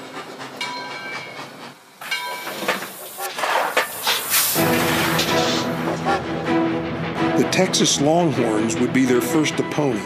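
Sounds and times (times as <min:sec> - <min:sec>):
hissing steam bursts: 0:00.0 - 0:06.3
train rumbling along rails: 0:00.0 - 0:10.0
speech: 0:07.5 - 0:10.0.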